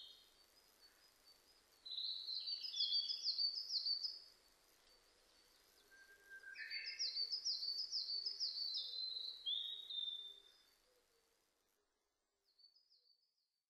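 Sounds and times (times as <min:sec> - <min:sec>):
Narcissus flycatcher singing: 0:00.0 - 0:10.8.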